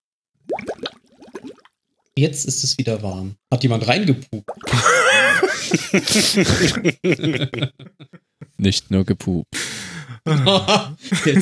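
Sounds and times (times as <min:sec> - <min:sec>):
water pouring into a bathtub in a bathroom: 0:00.4 - 0:02.1, 0:04.4 - 0:05.0
speech: 0:02.2 - 0:11.4
laughter: 0:04.7 - 0:08.6, 0:10.1 - 0:11.4.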